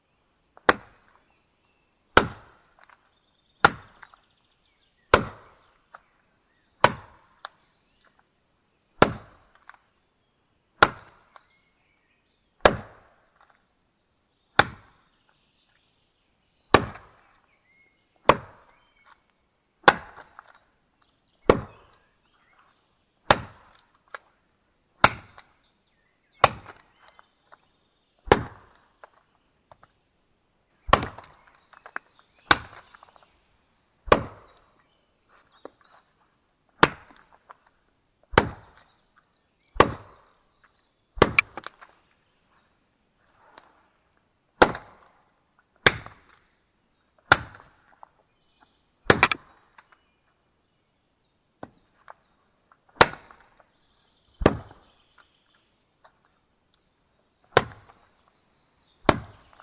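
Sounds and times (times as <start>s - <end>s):
axe chopping wood in a forest: 0.6s - 1.2s, 2.1s - 3.0s, 3.6s - 4.2s, 5.1s - 6.0s, 6.8s - 7.6s, 9.0s - 9.8s, 10.8s - 11.5s, 12.6s - 13.6s, 14.6s - 15.0s, 16.7s - 17.3s, 18.2s - 19.2s, 19.8s - 20.6s, 21.4s - 22.0s, 23.2s - 24.3s, 25.0s - 25.6s, 26.4s - 27.2s, 28.2s - 29.2s, 30.8s - 33.2s, 34.0s - 34.6s, 36.8s - 37.6s, 38.2s - 38.9s, 39.7s - 40.3s, 41.2s - 41.9s, 44.6s - 45.2s, 45.8s - 46.4s, 47.2s - 48.1s, 49.0s - 49.9s, 52.9s - 53.6s, 54.4s - 54.9s, 57.5s - 58.0s, 59.0s - 59.6s.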